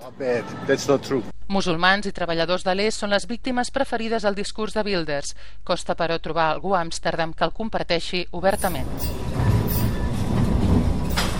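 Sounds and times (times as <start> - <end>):
speech: 0.1 - 9.5
tram rumbling along its rails in Lisbon: 8.5 - 11.3
high tram squeal: 8.6 - 10.4.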